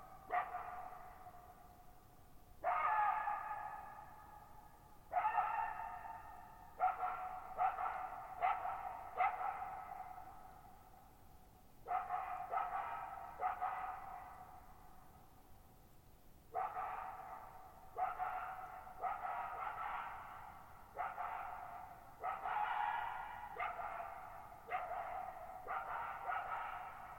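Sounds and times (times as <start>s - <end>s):
lone wild coyote barking at night in a high mountain meadow: 0.3s - 1.3s, 2.6s - 4.0s, 5.1s - 6.2s, 6.8s - 10.2s, 11.9s - 14.6s, 16.5s - 27.1s.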